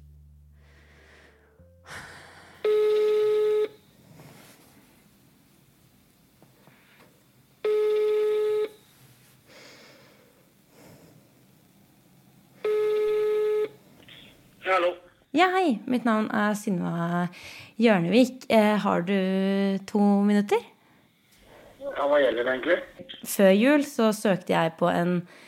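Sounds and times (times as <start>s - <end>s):
phone ringback tone: 2.6s - 3.8s, 7.6s - 8.8s, 12.6s - 14.3s
speech: 14.7s - 20.7s, 22.0s - 25.4s.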